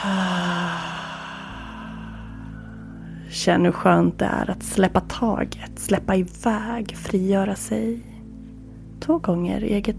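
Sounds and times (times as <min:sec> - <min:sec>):
deep audible exhalation with faint voiced hum: 0:00.0 - 0:03.3
speech: 0:03.3 - 0:08.1, 0:09.0 - 0:09.9.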